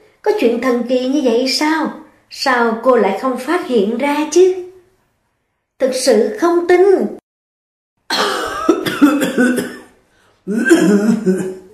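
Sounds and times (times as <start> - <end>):
speech: 0.2 - 4.6, 5.8 - 7.2, 9.4 - 9.7, 10.5 - 11.5
loud dry cough: 8.1 - 11.7.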